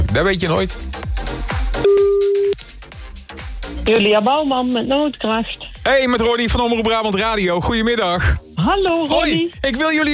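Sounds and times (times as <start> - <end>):
rhythmic backing track: 0.0 - 10.1
speech: 0.1 - 1.0, 3.9 - 10.1
telephone tone while placing a call: 1.8 - 2.6.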